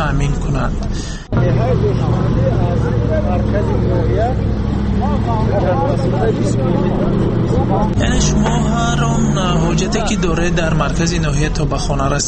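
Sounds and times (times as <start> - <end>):
large cargo truck engine droning on rough road: 0.0 - 12.2
speech: 0.1 - 12.2.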